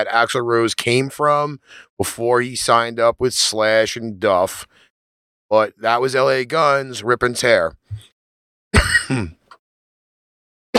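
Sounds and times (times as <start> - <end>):
speech: 0.0 - 4.8, 5.5 - 7.8, 8.8 - 9.4
harsh throaty cough: 8.8 - 9.5.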